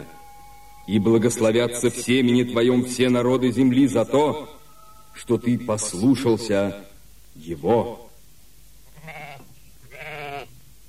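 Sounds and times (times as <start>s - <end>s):
low steady hum: 0.0s - 10.8s
speech: 0.9s - 4.6s, 5.2s - 8.0s
ram bleating: 8.9s - 10.6s.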